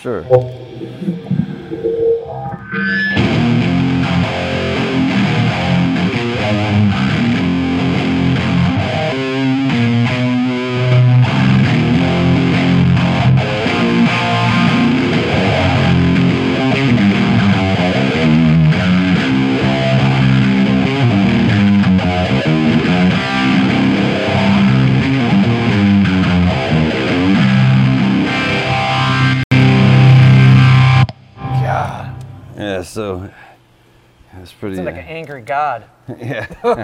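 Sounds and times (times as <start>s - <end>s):
speech: 0.0s - 3.2s, 35.2s - 36.8s
electric guitar chords through heavy distortion and sweeping phaser: 0.0s - 32.6s
laughter: 36.1s - 36.8s.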